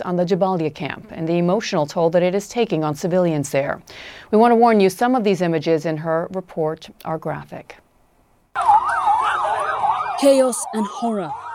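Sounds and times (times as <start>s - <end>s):
speech: 0.0s - 7.8s, 10.2s - 11.4s
ambulance siren wailing at Jabalia refugee camp in Gaza: 8.6s - 11.5s.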